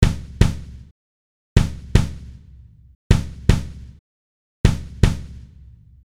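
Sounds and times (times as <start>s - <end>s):
flat kick drum: 0.0s - 0.8s, 1.6s - 3.9s, 4.7s - 5.6s.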